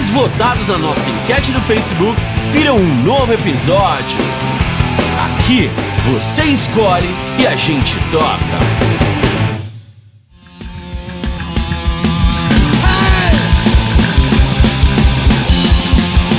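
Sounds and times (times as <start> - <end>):
distorted guitars: 0.0 - 16.3
loud dense Brazilian punk hardcore song: 0.0 - 16.3
speech: 0.2 - 9.0
pounding drums: 0.5 - 9.7, 11.0 - 16.3
shouted vocals: 12.8 - 13.6.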